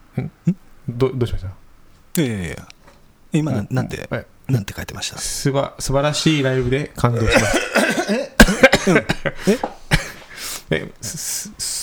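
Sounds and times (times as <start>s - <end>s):
speech: 0.2s - 1.6s, 2.2s - 9.8s, 10.7s - 11.8s
sharp coughs: 7.2s - 10.3s
laughter: 7.2s - 10.9s.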